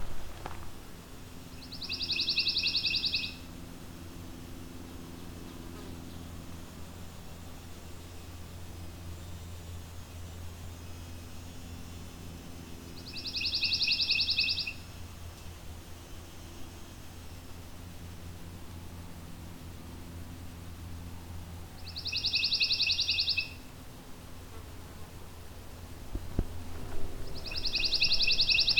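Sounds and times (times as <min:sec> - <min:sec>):
steady low outdoor rumble and hiss: 0:00.0 - 0:28.7
pine warbler singing trills: 0:01.6 - 0:03.4, 0:13.0 - 0:14.9, 0:21.8 - 0:23.6, 0:27.2 - 0:28.7.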